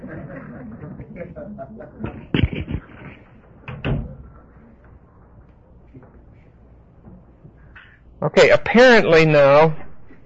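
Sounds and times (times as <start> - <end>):
laughter: 0.0 - 3.3
speech: 1.6 - 2.5, 8.2 - 9.8
door pushed shut with a sharp thud: 3.7 - 4.2.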